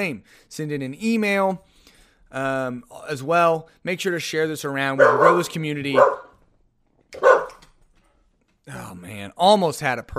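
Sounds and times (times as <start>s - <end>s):
speech: 0.0s - 1.7s, 2.3s - 6.3s, 8.7s - 10.1s
single sharp dog bark: 5.0s - 6.4s, 7.2s - 7.6s.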